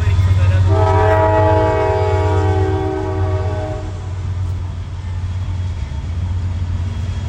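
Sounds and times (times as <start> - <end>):
train rolling by: 0.0 - 7.2
train horn blast: 0.6 - 4.4.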